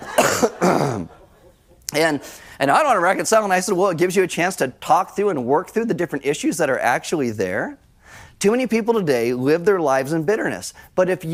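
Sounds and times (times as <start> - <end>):
person coughing as a joke: 0.0 - 1.2
speech: 0.4 - 1.2, 1.9 - 11.3.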